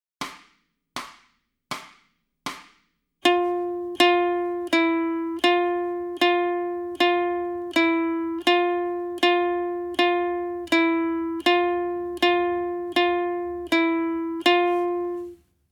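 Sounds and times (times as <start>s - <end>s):
ukulele warm-up in F: 3.2s - 15.4s.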